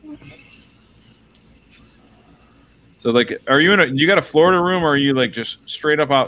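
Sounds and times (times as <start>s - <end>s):
cricket chirping: 0.0s - 6.2s
quiet low hum: 0.0s - 6.2s
speech: 3.0s - 6.2s.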